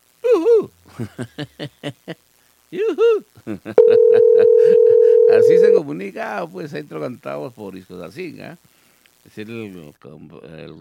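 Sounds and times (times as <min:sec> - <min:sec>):
speech: 0:01.0 - 0:10.7
telephone ringback tone on an outgoing call: 0:03.8 - 0:05.8.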